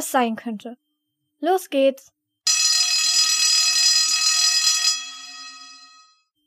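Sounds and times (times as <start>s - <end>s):
speech: 0.1s - 0.8s, 1.4s - 2.2s
electric school bell ringing at a school for break: 2.5s - 6.2s.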